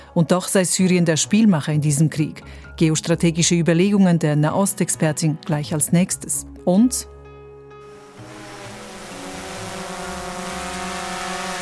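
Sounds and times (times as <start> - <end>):
speech: 0.2 - 7.2
drone used to help prisoners escape buzzing in flight: 7.8 - 11.6.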